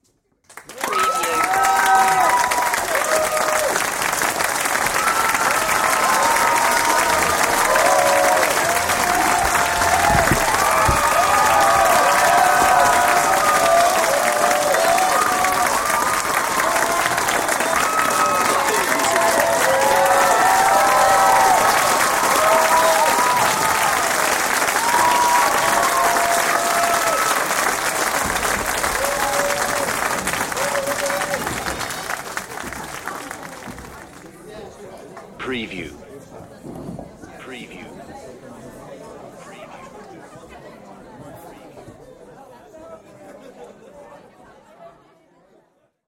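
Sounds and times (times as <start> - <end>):
big crowd audience applause: 0.5 - 35.9.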